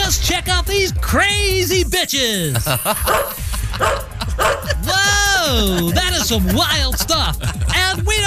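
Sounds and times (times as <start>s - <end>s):
speech: 0.3s - 4.0s, 5.5s - 8.2s
laughter: 2.4s - 8.2s
dogs barking: 2.8s - 4.8s.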